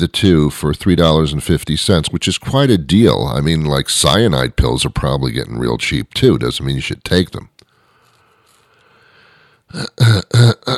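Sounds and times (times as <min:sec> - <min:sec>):
speech: 0:00.0 - 0:07.5, 0:09.7 - 0:10.7
person clearing throat: 0:09.7 - 0:10.7.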